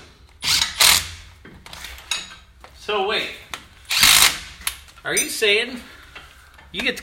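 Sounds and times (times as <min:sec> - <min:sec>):
wrench tightening bolts on a rear axle: 0:00.5 - 0:01.2, 0:03.9 - 0:04.8
speech: 0:05.0 - 0:05.9, 0:06.7 - 0:06.9.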